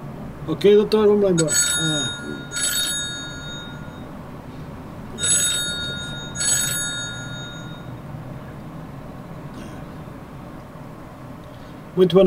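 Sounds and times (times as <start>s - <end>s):
speech: 0.5s - 2.6s, 12.0s - 12.2s
telephone ringing for an incoming call: 1.4s - 4.3s, 5.1s - 8.0s.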